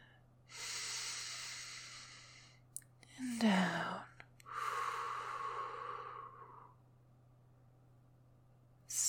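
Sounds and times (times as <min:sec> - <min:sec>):
deep breathing: 0:00.5 - 0:02.6, 0:04.4 - 0:06.8.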